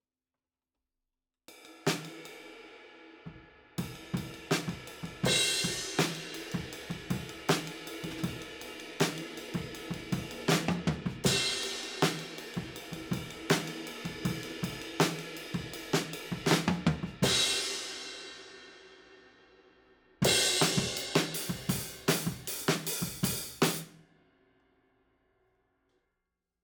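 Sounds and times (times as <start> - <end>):
drum overheads at 160 BPM: 3.8 - 18.8, 20.2 - 23.9.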